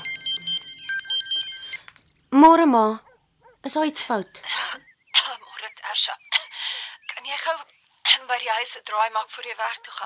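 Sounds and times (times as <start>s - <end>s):
electronic phone ringtone: 0.0s - 2.0s
speech: 2.4s - 4.6s, 5.9s - 6.2s, 8.3s - 10.0s.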